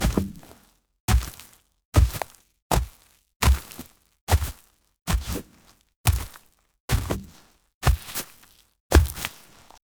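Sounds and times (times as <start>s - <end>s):
heavy dirty footsteps on grass: 0.0s - 9.8s.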